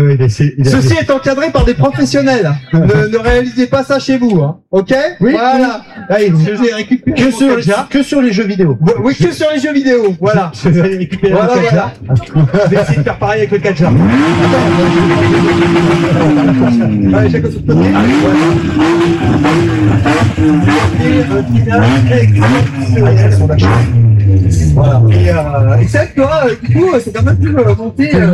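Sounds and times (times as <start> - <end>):
speech: 0.0 - 28.3
laughter: 0.7 - 3.6, 10.7 - 23.8
car engine revving hard in professionally supervised driving: 12.4 - 27.6.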